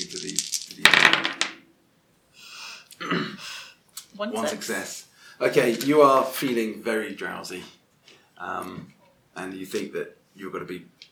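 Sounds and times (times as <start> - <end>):
dice tumbling across a table: 0.0 - 1.7, 5.6 - 6.3
soft breathy hissing: 2.3 - 3.8
speech: 4.2 - 7.8, 8.4 - 11.0.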